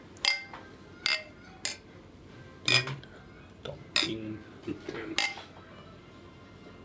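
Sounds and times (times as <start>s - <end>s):
glasses clinking in a toast: 0.2s - 1.8s, 2.7s - 3.0s, 4.0s - 4.2s, 5.2s - 5.4s.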